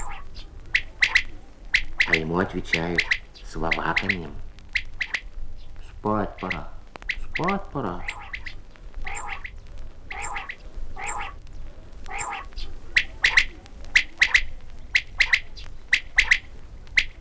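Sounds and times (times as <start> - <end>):
quails calling outdoors: 0.0 - 17.2
speech: 2.1 - 4.4, 6.0 - 6.7, 7.4 - 8.1.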